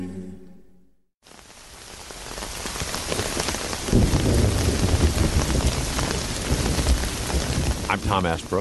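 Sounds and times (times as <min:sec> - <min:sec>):
music: 0:00.0 - 0:01.0
steady heavy rain pouring down: 0:01.2 - 0:08.5
deep rumble of thunder: 0:01.8 - 0:08.5
speech: 0:08.0 - 0:08.5.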